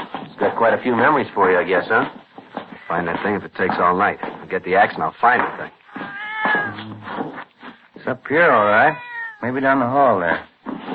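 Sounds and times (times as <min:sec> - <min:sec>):
speech: 0:00.4 - 0:02.2, 0:02.9 - 0:05.8, 0:08.0 - 0:10.5
cat meowing: 0:05.8 - 0:07.1, 0:08.5 - 0:09.8.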